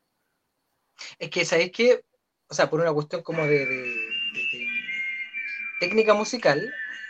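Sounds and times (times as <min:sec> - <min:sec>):
speech: 0:01.2 - 0:04.0, 0:05.8 - 0:06.8
high-pitched whistling from a film soundtrack: 0:03.3 - 0:07.0.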